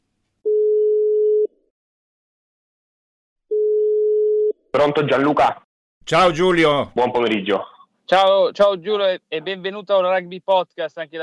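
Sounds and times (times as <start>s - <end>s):
telephone ringing tone on an outgoing call: 0.4s - 1.5s, 3.5s - 4.6s
speech: 4.7s - 11.2s.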